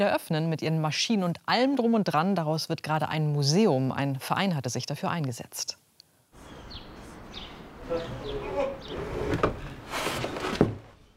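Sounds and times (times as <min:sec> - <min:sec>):
speech: 0:00.0 - 0:05.8
old loose wooden door of a former wool spinning mill creaking: 0:07.8 - 0:11.1.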